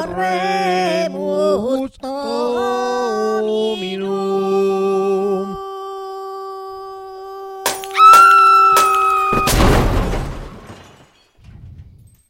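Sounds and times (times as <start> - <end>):
speech: 0.0 - 2.8
sustained choral or organ-like tone: 0.0 - 7.6
stained glass shattering: 7.7 - 11.5
car explosion: 8.3 - 11.1.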